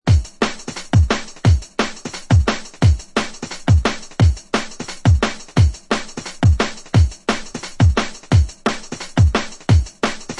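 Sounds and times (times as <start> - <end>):
jungle breakbeat music: 0.1 - 10.3.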